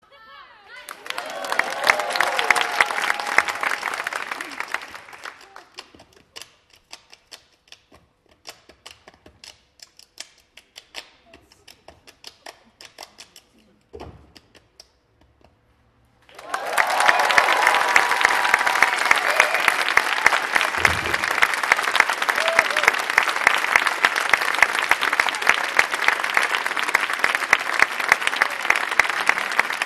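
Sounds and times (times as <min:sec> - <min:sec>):
applause: 0:00.7 - 0:09.3, 0:16.2 - 0:29.8
ensemble hand clapping speeding up: 0:00.9 - 0:13.6, 0:16.3 - 0:29.8.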